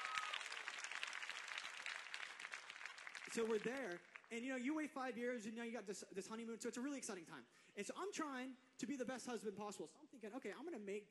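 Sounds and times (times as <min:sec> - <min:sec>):
audience applause: 0:00.0 - 0:04.4
speech: 0:03.3 - 0:11.0.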